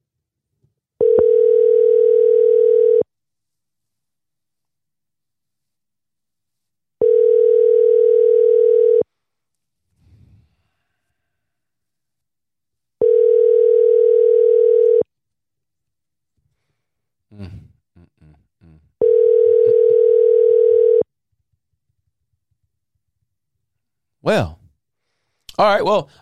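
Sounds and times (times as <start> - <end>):
phone line ringing back on an outgoing call: 1.0 - 3.1, 7.0 - 9.1, 13.0 - 15.0, 19.0 - 21.1
speech: 24.3 - 24.5, 25.6 - 26.2.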